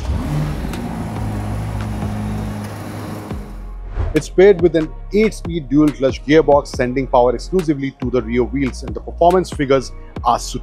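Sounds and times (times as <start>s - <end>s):
powerful twin-turbo V8 car engine revving: 0.0s - 4.2s
speech: 4.1s - 10.6s.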